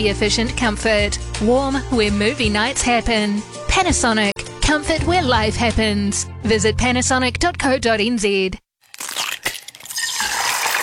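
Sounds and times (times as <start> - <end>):
speech: 0.0 - 8.6
eggshells being cracked and crushed for a food scraps bin: 8.8 - 10.8.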